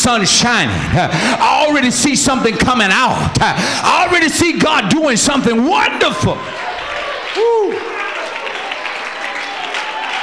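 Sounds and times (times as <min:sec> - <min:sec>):
speech: 0:00.0 - 0:06.7, 0:07.3 - 0:07.9
church congregation clapping during worship: 0:05.8 - 0:10.2.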